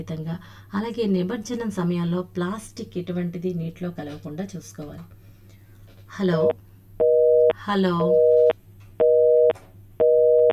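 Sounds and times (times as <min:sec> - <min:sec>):
speech: 0:00.0 - 0:05.2, 0:06.1 - 0:06.7, 0:07.6 - 0:08.4
telephone busy tone after a call is cut off: 0:07.0 - 0:10.5.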